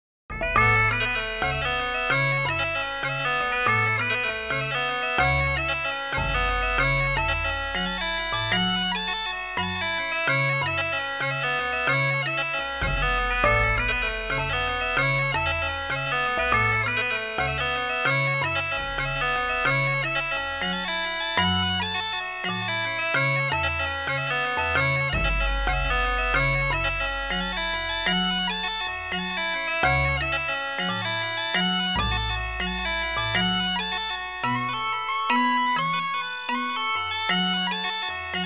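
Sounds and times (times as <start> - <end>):
bassoon prime harmonics: 0.3 - 38.4.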